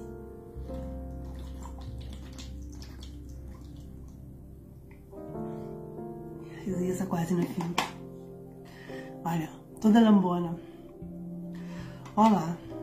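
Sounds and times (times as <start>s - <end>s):
water running steadily: 0.0s - 5.2s
speech: 6.6s - 8.0s, 9.2s - 10.7s, 12.2s - 12.6s.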